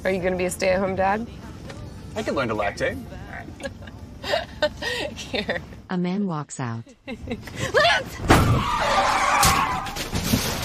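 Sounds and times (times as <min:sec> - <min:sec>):
speech: 0:00.0 - 0:01.5, 0:02.2 - 0:09.6
truck tyres screeching in a skid: 0:08.2 - 0:10.6.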